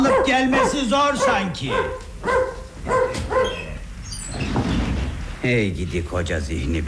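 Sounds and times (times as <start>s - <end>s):
dog giving high-pitched yelping barks with a whimpering tone: 0.0s - 3.8s
speech: 0.3s - 3.6s, 5.4s - 6.8s.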